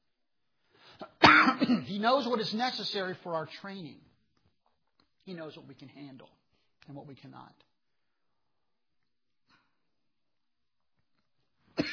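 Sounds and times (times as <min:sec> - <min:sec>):
harsh throaty coughing: 0:01.0 - 0:02.0, 0:11.7 - 0:11.9
speech: 0:01.7 - 0:04.1, 0:05.3 - 0:07.7.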